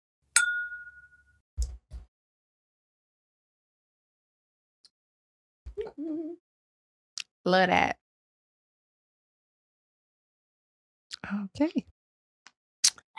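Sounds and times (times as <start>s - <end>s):
glasses clinking in a toast: 0.4s - 1.3s
speech: 7.4s - 8.0s, 11.2s - 11.9s.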